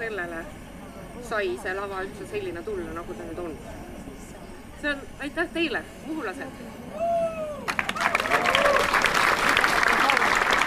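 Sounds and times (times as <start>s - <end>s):
speech: 0.0s - 3.9s, 4.8s - 7.2s
large audience applauding: 7.6s - 10.6s.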